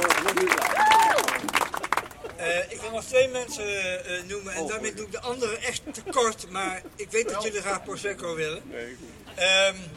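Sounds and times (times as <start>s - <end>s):
applause from an audience: 0.0s - 2.3s
speech: 3.0s - 9.9s.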